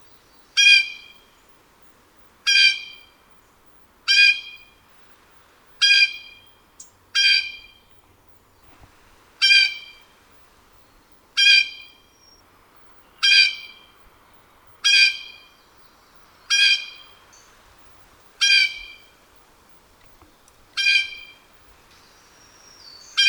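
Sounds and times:
blue jay call variation: 0.6s - 1.3s, 2.4s - 3.2s, 4.1s - 4.8s, 5.8s - 7.9s, 9.4s - 10.1s, 11.4s - 12.2s, 13.0s - 14.0s, 14.8s - 15.6s, 16.5s - 17.5s, 18.4s - 19.2s, 20.8s - 23.2s.

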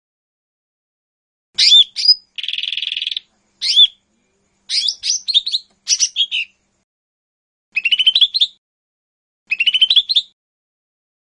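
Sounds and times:
lesser green leafbird giving whistled slurs, a buzzy rattle and chirping: 1.6s - 4.0s, 4.7s - 6.6s, 7.8s - 8.6s, 9.5s - 10.4s.

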